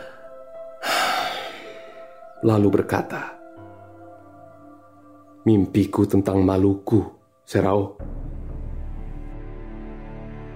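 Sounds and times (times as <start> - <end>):
long deep breath drawn in: 0.0 - 2.2
speech: 2.4 - 3.4, 5.4 - 8.2.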